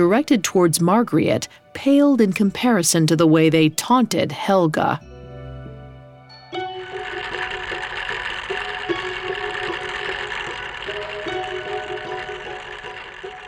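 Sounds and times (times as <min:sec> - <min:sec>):
speech: 0:00.0 - 0:05.1
yarn being spun from washed wool in a small bedroom: 0:06.3 - 0:13.4.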